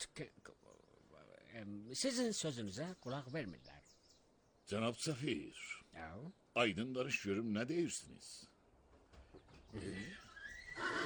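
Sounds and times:
speech: 0:00.1 - 0:00.7, 0:01.5 - 0:04.0, 0:04.7 - 0:08.5, 0:09.7 - 0:11.0
Iranian horse neighing: 0:09.8 - 0:11.0.

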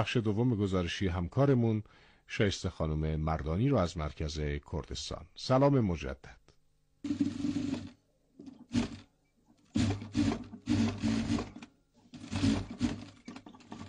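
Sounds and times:
speech: 0:00.0 - 0:06.4, 0:07.0 - 0:07.6
tailor's sewing machine whirring and clattering in Sanandaj Kurdistan sewing Kurdish clothing: 0:07.0 - 0:13.8.

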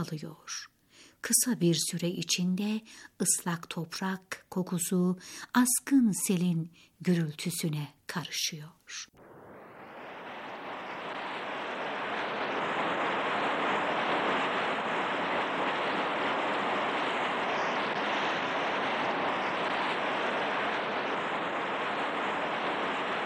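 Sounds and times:
speech: 0:00.0 - 0:09.3
strong storm wind blowing: 0:09.2 - 0:23.2.

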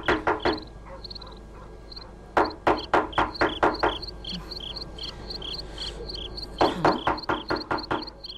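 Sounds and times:
sharp knocking on a door: 0:00.0 - 0:00.7, 0:02.4 - 0:04.1, 0:06.6 - 0:08.1
crickets chirping at night: 0:00.0 - 0:08.3.

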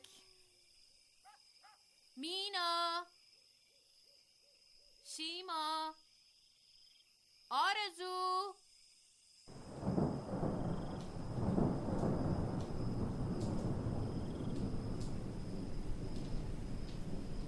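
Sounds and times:
speech: 0:02.2 - 0:03.2, 0:05.2 - 0:06.0, 0:07.5 - 0:08.6
rain shower: 0:09.5 - 0:17.4
faint sharp ticks: 0:12.0 - 0:13.8, 0:14.4 - 0:15.3, 0:16.0 - 0:17.2.

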